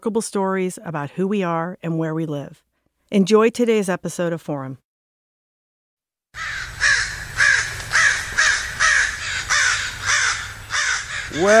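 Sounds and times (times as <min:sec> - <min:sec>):
speech: 0:00.0 - 0:04.8, 0:11.4 - 0:11.5
crows cawing: 0:06.4 - 0:11.5.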